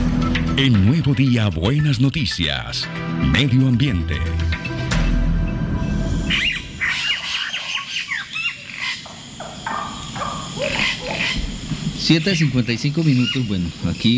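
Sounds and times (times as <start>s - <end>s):
speech: 0.6s - 4.6s, 12.1s - 14.1s
several birds chirping and squawking: 5.0s - 14.1s.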